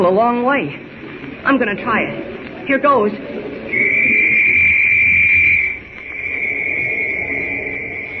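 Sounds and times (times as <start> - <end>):
speech: 0.0 - 3.8
police whistle blast ringing through a valley: 3.7 - 8.1.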